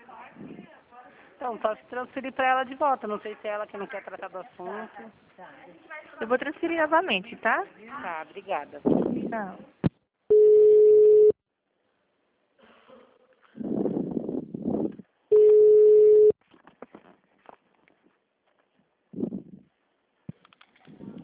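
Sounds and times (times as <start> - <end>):
speech: 1.4 - 9.8
telephone busy tone after a dropped call: 10.3 - 11.4, 15.3 - 16.4.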